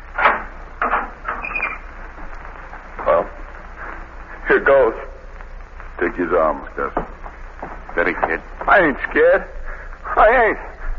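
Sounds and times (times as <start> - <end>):
heavy prison door creaking open: 0.0 - 2.0
prison door lock clunking and rattling: 0.1 - 1.8
speech: 4.5 - 5.1, 6.0 - 7.2, 8.0 - 9.6, 10.2 - 10.7.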